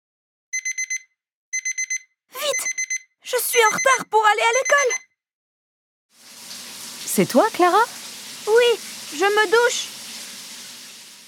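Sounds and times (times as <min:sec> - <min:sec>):
alarm clock ringing with high electronic beeps: 0:00.5 - 0:05.1
speech: 0:03.3 - 0:05.0, 0:07.2 - 0:09.9.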